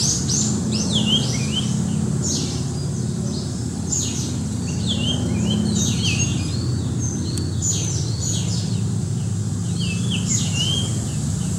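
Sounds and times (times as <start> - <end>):
Japanese grosbeak whistled song: 0.0 - 2.6, 3.9 - 8.8, 9.6 - 11.2
steady low rumbling background noise: 0.0 - 11.5.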